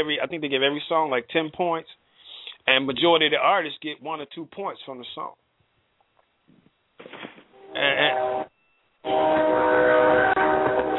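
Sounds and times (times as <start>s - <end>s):
speech: 0.0s - 2.0s, 2.6s - 5.4s
train horn blasts: 7.6s - 10.9s.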